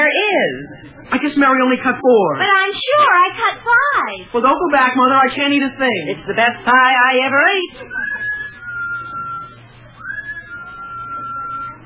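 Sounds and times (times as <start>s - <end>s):
speech: 0.6s - 8.0s
long steady whistled tone: 7.8s - 11.8s.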